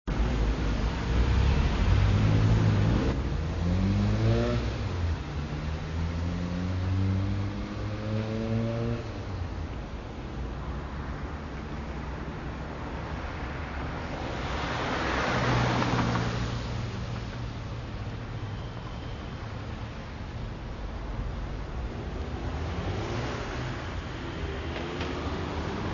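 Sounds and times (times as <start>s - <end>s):
city ambience: 0.1s - 25.9s.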